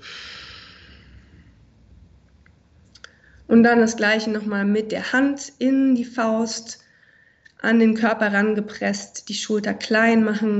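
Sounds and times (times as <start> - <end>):
deep breath out after a strong inhale during a relaxation exercise: 0.0 - 1.6
speech: 3.5 - 6.8, 7.6 - 10.5.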